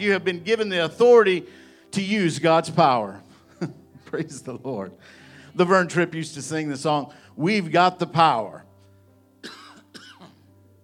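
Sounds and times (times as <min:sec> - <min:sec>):
speech: 0:00.0 - 0:08.7
person coughing: 0:09.4 - 0:10.4.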